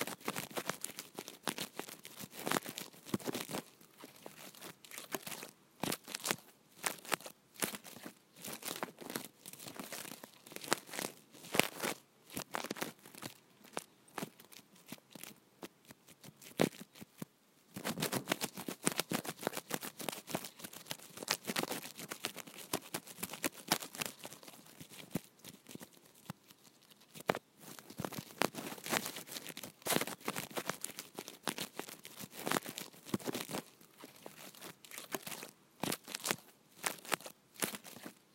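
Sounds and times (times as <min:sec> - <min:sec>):
asparagus fern sprigs scratching against a phone microphone: 0:00.0 - 0:38.2.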